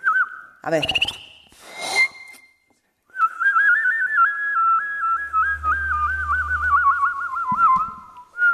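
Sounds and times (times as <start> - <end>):
person whistling a birdlike tune imitating a goldfinch: 0.0 - 2.4, 3.1 - 8.5
speech: 0.6 - 1.2.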